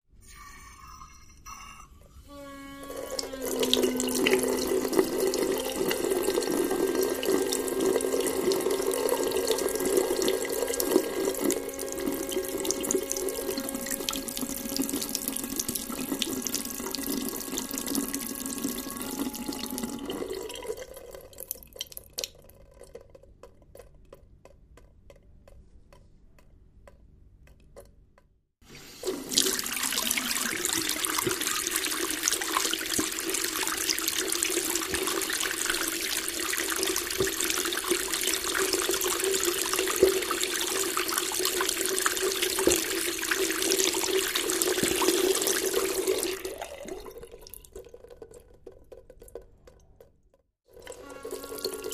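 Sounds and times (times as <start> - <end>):
singing pipes of a porcelain wash basin: 0.2 - 21.3, 28.7 - 47.0, 50.8 - 51.9.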